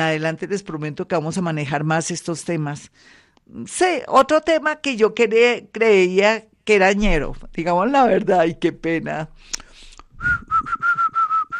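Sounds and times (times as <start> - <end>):
speech: 0.0 - 9.6
person whistling: 10.2 - 11.5.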